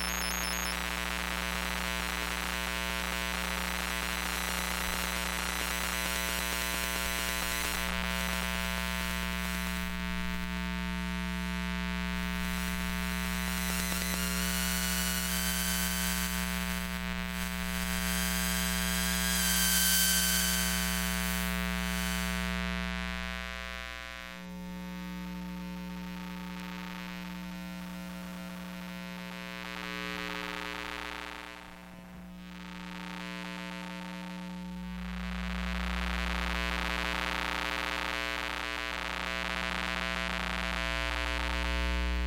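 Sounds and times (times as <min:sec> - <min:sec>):
dense stack of steady electromagnetic buzzing tones: 0:00.0 - 0:00.8
electromagnetic hum from household electronics: 0:00.0 - 0:42.2.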